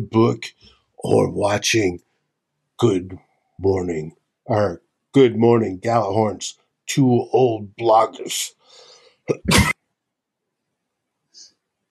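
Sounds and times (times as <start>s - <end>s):
speech: 0.0s - 2.0s, 2.8s - 9.8s
short cough from a dry throat: 9.3s - 9.8s.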